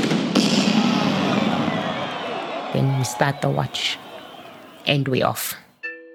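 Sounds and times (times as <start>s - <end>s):
race-start cannon firing: 0.0s - 1.8s
speech: 2.8s - 4.0s, 4.8s - 5.6s.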